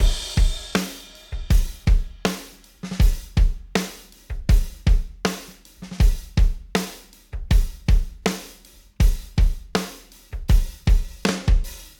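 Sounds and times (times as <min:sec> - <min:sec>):
roomy rock drum loop: 0:00.0 - 0:08.4, 0:09.0 - 0:11.9.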